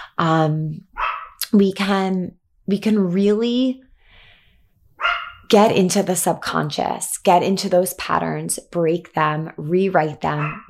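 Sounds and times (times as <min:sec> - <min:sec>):
speech: 0:00.2 - 0:00.9, 0:01.5 - 0:03.8, 0:05.5 - 0:10.6
dog barking indoors: 0:01.0 - 0:01.4, 0:05.0 - 0:05.5, 0:10.4 - 0:10.6.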